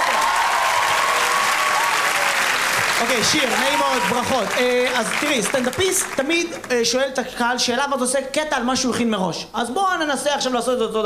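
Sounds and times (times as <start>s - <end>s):
audience applause at a stand-up comedy show: 0.0s - 6.8s
speech: 3.0s - 11.0s.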